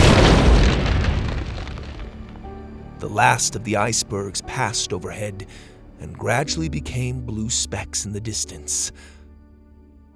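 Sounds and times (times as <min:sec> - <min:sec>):
robot blowing apart in a blast of fire and ice: 0:00.0 - 0:03.9
speech: 0:03.0 - 0:09.2.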